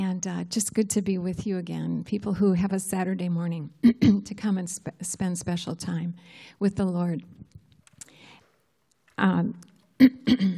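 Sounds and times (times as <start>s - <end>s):
speech: 0.2s - 7.5s, 9.2s - 10.5s
person clearing throat: 10.0s - 10.5s
person coughing harshly: 10.0s - 10.5s.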